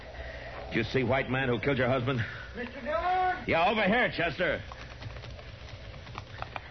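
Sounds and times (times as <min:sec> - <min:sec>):
steady hiss of noise: 0:00.0 - 0:06.6
speech: 0:00.7 - 0:04.7
horse hooves clip-clopping: 0:02.6 - 0:06.6.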